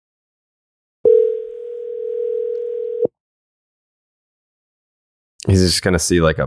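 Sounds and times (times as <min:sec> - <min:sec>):
telephone dial tone while placing a call: 0:01.1 - 0:03.1
speech: 0:05.5 - 0:06.4.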